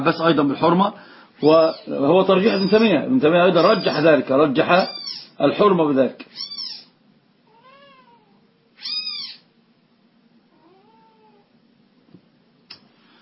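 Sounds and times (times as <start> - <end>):
speech: 0.0 - 6.7
cat meowing: 1.4 - 3.0, 3.6 - 4.1, 4.8 - 5.4, 6.3 - 9.5, 10.5 - 11.5.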